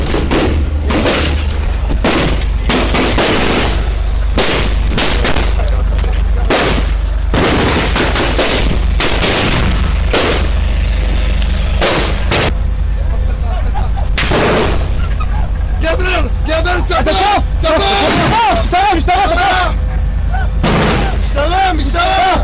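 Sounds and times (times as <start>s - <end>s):
heavy gunfire during a police commando rescue: 0.0s - 12.6s, 14.2s - 15.0s, 17.8s - 18.7s, 20.6s - 21.4s
laughter: 1.4s - 7.3s, 12.7s - 22.4s.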